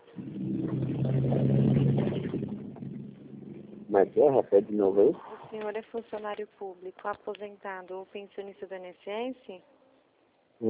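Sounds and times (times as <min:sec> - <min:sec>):
heavy truck rumbling past on the street: 0:00.0 - 0:05.0
speech: 0:04.0 - 0:09.8.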